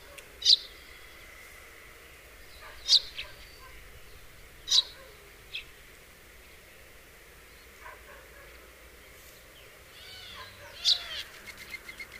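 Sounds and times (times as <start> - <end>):
house sparrow sharp chirps, Passer domesticus: 0.0 - 1.3, 2.4 - 5.7, 9.3 - 12.1.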